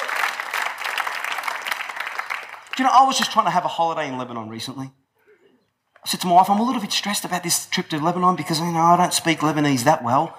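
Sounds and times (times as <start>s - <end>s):
audience applause: 0.0s - 3.6s
speech: 2.8s - 5.0s, 6.0s - 10.3s.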